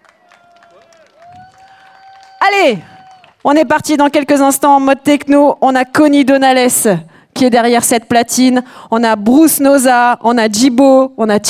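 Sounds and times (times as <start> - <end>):
crowd at a solidarity gathering applauding: 0.0 - 3.5
speech: 2.6 - 11.4.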